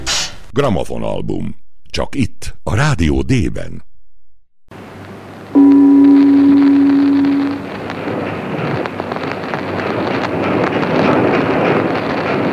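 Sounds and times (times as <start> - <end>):
speech: 0.6 - 3.9
rushing wind on a boat travelling toward Budapest: 4.8 - 12.5
loud low horn-like blast of a boat: 5.6 - 7.9.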